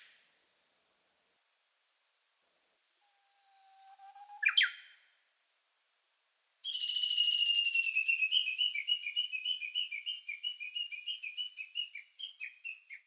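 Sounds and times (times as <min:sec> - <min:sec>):
Horornis diphone twittering: 0:03.5 - 0:05.0, 0:06.6 - 0:13.0.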